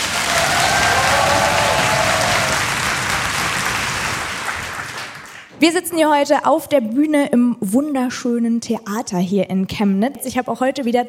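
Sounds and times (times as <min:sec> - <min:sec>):
faint cheers: 0:00.0 - 0:02.9
large live audience applauding in a theatre in Chemnitz Germany: 0:00.0 - 0:05.5
speech: 0:05.6 - 0:11.0.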